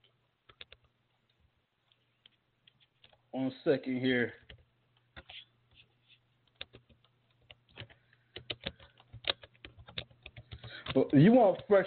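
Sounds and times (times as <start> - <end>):
low electrical hum: 0.0 - 11.8
typing on a computer keyboard: 0.5 - 0.9, 4.4 - 5.8, 6.4 - 11.8
speech: 3.3 - 4.4, 11.1 - 11.8.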